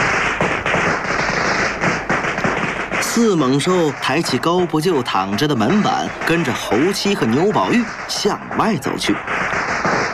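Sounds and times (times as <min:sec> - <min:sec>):
long strings of firecrackers set off at a send-off: 0:00.0 - 0:10.1
speech: 0:03.2 - 0:09.6.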